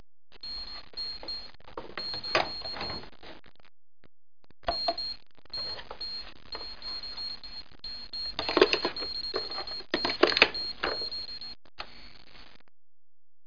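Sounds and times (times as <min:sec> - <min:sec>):
defibrillator: 0:00.4 - 0:03.2, 0:04.7 - 0:11.6.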